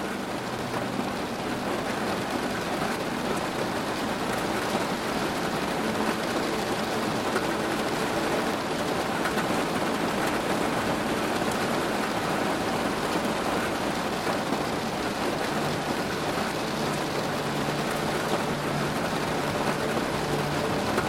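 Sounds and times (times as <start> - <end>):
heavy rain drumming on a roof: 0.0 - 21.0.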